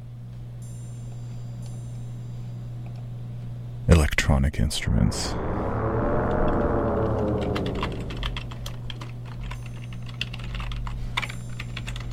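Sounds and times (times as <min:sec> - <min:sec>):
steady low electrical hum: 0:00.0 - 0:12.1
speech: 0:03.9 - 0:05.6
typing on a computer keyboard: 0:07.8 - 0:12.1.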